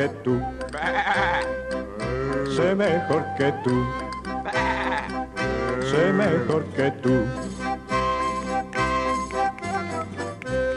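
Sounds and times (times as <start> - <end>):
speech: 0.0 - 1.5, 2.6 - 4.0, 5.9 - 7.4
steady musical backing: 0.0 - 10.7
lamb bleating: 0.8 - 2.6, 4.4 - 6.5.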